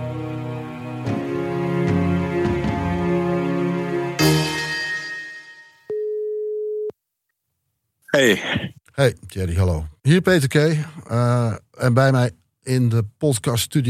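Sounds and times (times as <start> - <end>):
loud music: 0.0 - 5.3
telephone ringing tone while placing a call: 5.9 - 6.9
speech: 8.2 - 13.8.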